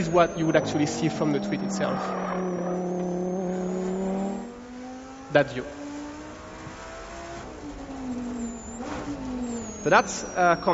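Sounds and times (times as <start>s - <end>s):
speech: 0.0s - 2.5s, 5.3s - 5.8s, 9.8s - 10.7s
Lamborghini sports car engine revving: 0.0s - 10.7s.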